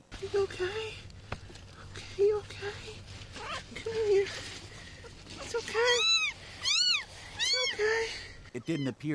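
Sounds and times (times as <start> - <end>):
speech: 0.2 - 1.1, 2.2 - 3.1, 5.4 - 6.1, 7.8 - 9.1
kitten meowing: 5.8 - 7.9.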